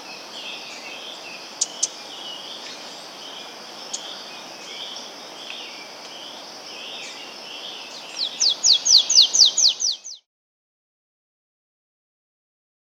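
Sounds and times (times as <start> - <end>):
quiet hiss: 0.0 - 10.2
golden-bellied warbler singing in South America: 0.0 - 10.3.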